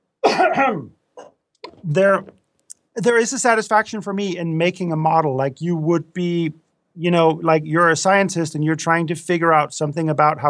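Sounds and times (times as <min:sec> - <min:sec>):
person coughing throaty bursts: 0:00.2 - 0:01.4
speech: 0:00.5 - 0:01.0, 0:01.8 - 0:02.4, 0:03.0 - 0:10.4.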